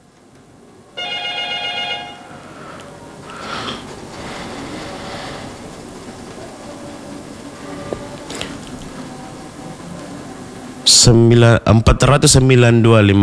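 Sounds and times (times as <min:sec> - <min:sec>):
murmuring background: 0:00.0 - 0:13.2
telephone ringing with an incoming caller to a radio show: 0:01.0 - 0:10.9.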